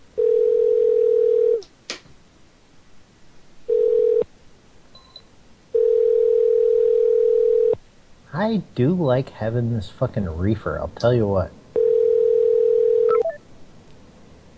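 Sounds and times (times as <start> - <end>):
telephone ringing tone during a call: 0.2 - 1.6, 3.7 - 4.3, 5.7 - 7.8, 11.8 - 13.4
speech: 8.4 - 11.6.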